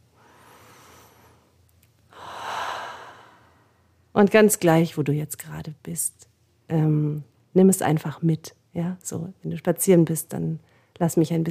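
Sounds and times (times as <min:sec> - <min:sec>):
deep breath in and out through the airway: 0:00.1 - 0:01.5, 0:02.1 - 0:04.0
speech: 0:04.2 - 0:11.4.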